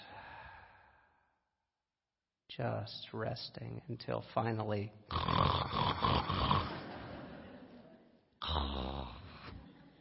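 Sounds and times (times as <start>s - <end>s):
speech: 2.6s - 6.5s
woman snoring during resting pose of a class: 5.1s - 6.7s, 8.4s - 9.5s
laughter: 6.6s - 8.4s, 9.4s - 9.9s.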